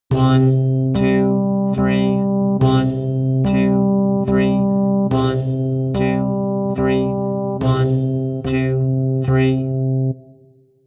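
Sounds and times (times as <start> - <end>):
music in triple meter: 0.1 - 10.5.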